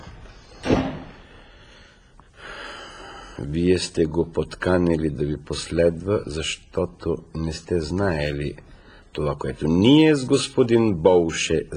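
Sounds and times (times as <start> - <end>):
door pushed shut: 0.6 - 1.2
speech: 3.4 - 11.7.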